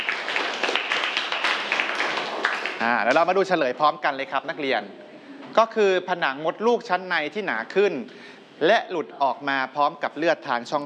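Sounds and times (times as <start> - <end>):
students clapping in a classroom: 0.0 - 3.6
speech: 2.8 - 10.8.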